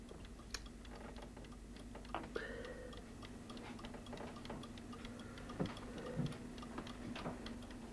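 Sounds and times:
clock with a wooden clockwork mechanism and wooden dial ticking: 0.0s - 7.9s.

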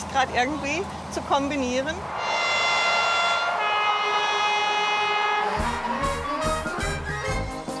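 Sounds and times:
speech: 0.1s - 2.2s
1990s diesel railcar engine droning in Wales: 1.8s - 7.4s.

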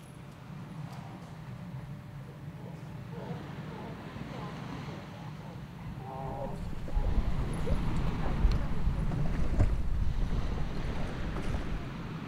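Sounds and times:
boat engine droning: 0.0s - 12.2s
gusty wind buffeting the microphone: 3.1s - 12.2s
water rushing past a boat: 6.0s - 12.2s.

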